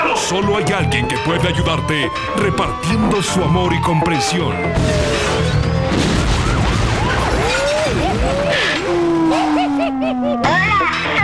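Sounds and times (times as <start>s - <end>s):
speech: 0.2s - 6.3s
burst of debris and rumble: 4.7s - 9.6s
nuclear explosion sound effect with roaring and crashing: 4.7s - 9.8s
laughter: 7.5s - 11.1s.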